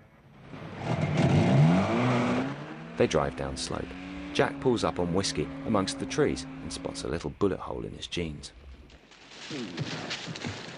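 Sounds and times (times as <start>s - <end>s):
car engine starting after ignition key is turned: 0.4s - 7.2s
speech: 3.0s - 8.6s, 9.5s - 10.7s.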